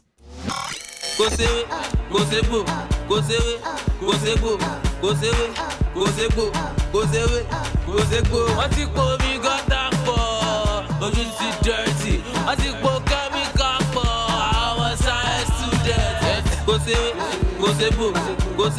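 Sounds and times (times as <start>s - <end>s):
man singing upbeat Nigerian pop song in Yoruba: 1.4s - 18.7s
driving steady beat with bright synths: 3.8s - 18.7s.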